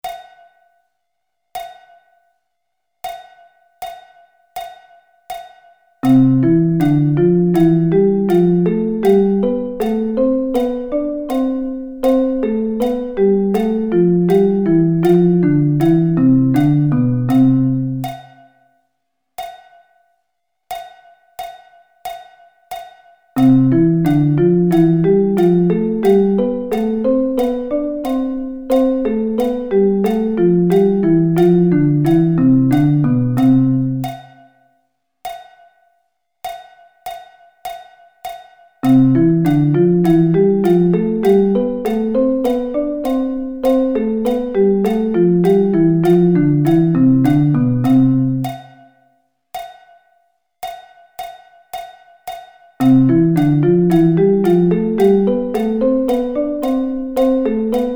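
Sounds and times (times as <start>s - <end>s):
musical thirds in C: 6.0s - 18.3s, 23.4s - 34.2s, 38.8s - 48.7s, 52.8s - 57.9s.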